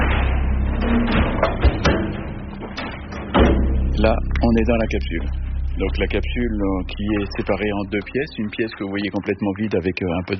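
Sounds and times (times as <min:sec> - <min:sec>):
armored blast door clanks: 0:00.0 - 0:04.0
massive armored blast door weighing several tons grinding: 0:00.0 - 0:08.9
speech: 0:04.0 - 0:10.3.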